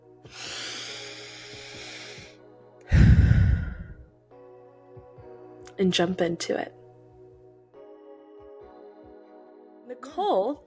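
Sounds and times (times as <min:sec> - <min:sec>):
person taking a deep breath: 0:00.2 - 0:04.1
speech: 0:05.8 - 0:06.8.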